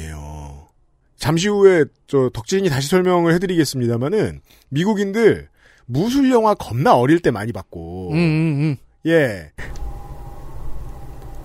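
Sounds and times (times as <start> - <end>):
speech: 1.2 - 9.8
faint emergency siren wailing: 9.6 - 11.4.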